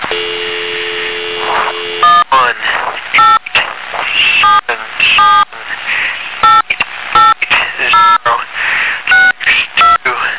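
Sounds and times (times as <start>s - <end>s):
noise: 0.0s - 10.3s
touch-tone keypad dialing beeps at varying pitches: 2.0s - 2.2s, 3.2s - 3.4s, 6.4s - 6.6s, 7.2s - 7.4s, 8.0s - 8.2s, 9.1s - 10.0s.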